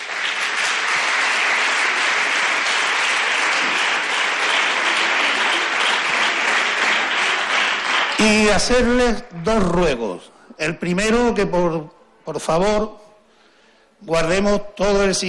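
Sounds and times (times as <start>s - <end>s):
audience applause for jury members at a singing contest: 0.0s - 8.8s
speech: 8.2s - 13.0s, 14.0s - 15.2s.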